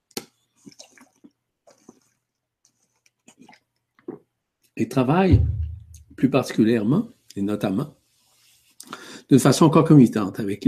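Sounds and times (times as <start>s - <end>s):
person sipping a favourite drink: 0.6s - 4.2s
speech: 4.8s - 5.5s, 6.2s - 8.0s, 9.3s - 10.6s.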